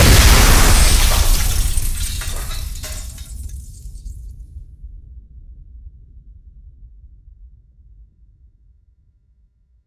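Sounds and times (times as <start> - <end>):
explosion: 0.0 - 3.8
glass hit: 0.0 - 3.9.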